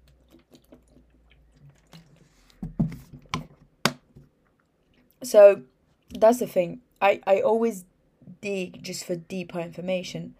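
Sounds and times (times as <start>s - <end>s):
person drinking water with gulping swallows: 0.0s - 2.8s
speech: 5.2s - 10.3s.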